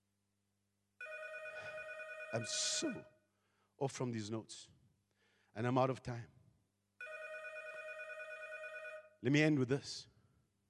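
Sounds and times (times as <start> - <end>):
telephone bell ringing: 1.0 - 3.0, 7.0 - 9.2
speech: 2.3 - 3.1, 3.8 - 4.8, 5.6 - 6.4, 9.2 - 10.1.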